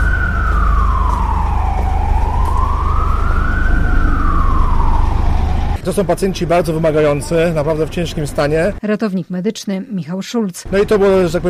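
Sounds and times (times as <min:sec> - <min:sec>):
ambulance siren wailing as ambulances drive off to a new hospital: 0:00.0 - 0:05.8
low rumble of engine and traffic noise: 0:00.0 - 0:08.8, 0:10.7 - 0:11.4
speech: 0:05.9 - 0:11.4.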